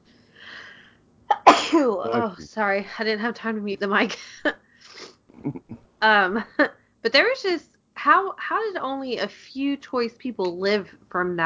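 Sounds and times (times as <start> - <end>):
sneeze: 1.3 - 2.2
speech: 1.8 - 4.6, 5.4 - 11.4.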